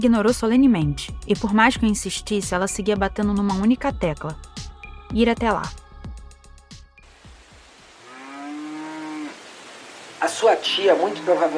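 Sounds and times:
speech: 0.0 - 5.8, 10.2 - 11.5
cow mooing: 8.0 - 9.4.

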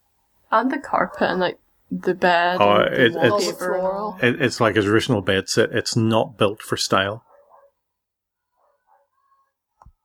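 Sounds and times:
speech: 0.5 - 7.3
laughter: 2.6 - 7.2
dog barking inside a house: 7.0 - 7.9, 8.5 - 9.6.

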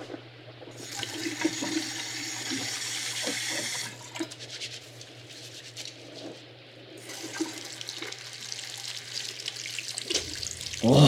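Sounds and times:
water running from a tap: 0.7 - 4.4, 7.0 - 11.0.

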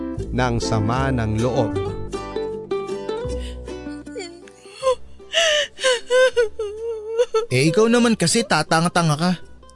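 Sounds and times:
speech: 0.3 - 2.0, 7.5 - 9.5
person crying and whimpering: 3.2 - 8.0.

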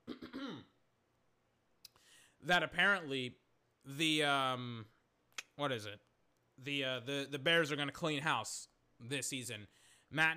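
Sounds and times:
person coughing: 0.0 - 0.8
speech: 2.4 - 4.9, 5.6 - 10.3.

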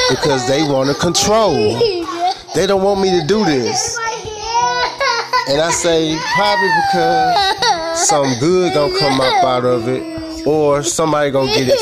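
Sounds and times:
young children fussing and whining: 0.0 - 11.7
speech: 0.1 - 4.1, 5.5 - 11.7.

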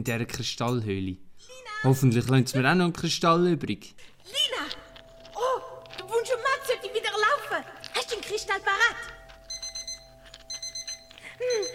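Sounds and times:
speech: 0.0 - 4.4
alarm clock ringing in quick high electronic beeps: 4.2 - 11.7.

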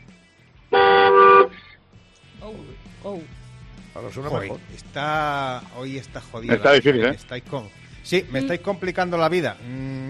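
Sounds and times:
car horn honking: 0.7 - 1.6
speech: 3.0 - 10.0.

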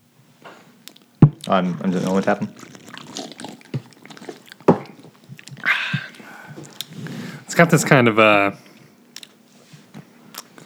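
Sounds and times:
fizzy hissing gulp of beer: 1.0 - 7.5
people slurping and swallowing beer: 1.4 - 7.5
speech: 1.5 - 2.8, 7.6 - 8.7.

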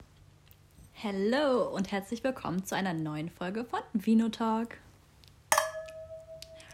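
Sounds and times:
speech: 1.0 - 4.8
wine glasses clinking in a toast: 5.5 - 6.7.

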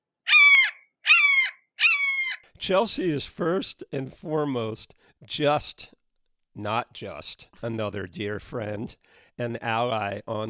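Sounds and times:
hawk screeching: 0.3 - 2.4
speech: 2.6 - 6.0, 6.6 - 10.4.

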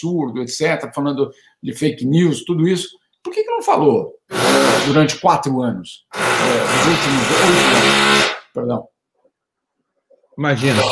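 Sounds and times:
speech: 0.0 - 8.9, 10.4 - 10.8
neighbour's power drill whirring: 4.3 - 5.0, 6.1 - 8.4.

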